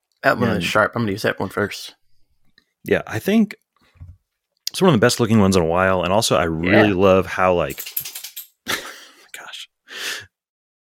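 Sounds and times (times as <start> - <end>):
speech: 0.2 - 2.0, 2.8 - 3.6, 4.7 - 8.1
dog shaking its collar: 7.7 - 8.6.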